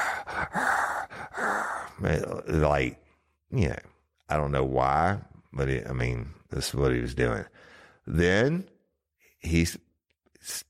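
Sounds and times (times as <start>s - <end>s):
man imitating heavy breathing: 0.0s - 2.0s
speech: 2.0s - 8.7s, 9.4s - 9.8s.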